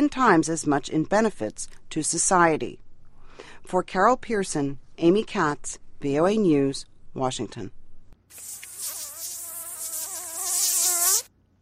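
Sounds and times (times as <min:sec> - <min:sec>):
speech: 0:00.0 - 0:02.8, 0:03.4 - 0:08.5
mosquito buzzing in flight: 0:08.5 - 0:11.3.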